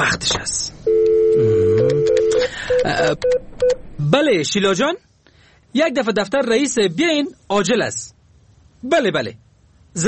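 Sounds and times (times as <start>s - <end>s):
short telephone dialing beeps: 0.9s - 3.8s
steady telephone electronic tone: 1.2s - 2.5s
speech: 3.0s - 5.1s, 5.7s - 8.2s, 8.8s - 9.4s.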